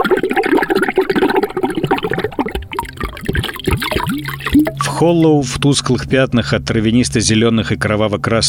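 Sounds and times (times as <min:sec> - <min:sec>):
liquid gurgling and bubbling: 0:00.0 - 0:05.9
speech: 0:05.0 - 0:08.4.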